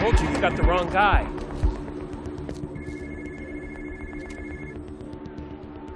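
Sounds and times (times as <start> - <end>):
speech: 0.1 - 1.4
phone under a truck ringing with an electronic tone: 2.8 - 4.8.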